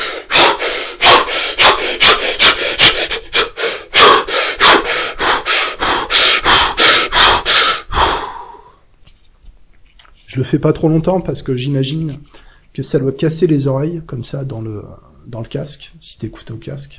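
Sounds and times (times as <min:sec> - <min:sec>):
person forcing rapid breaths with effort as a demonstration: 0:00.0 - 0:08.8
speech: 0:10.4 - 0:16.9.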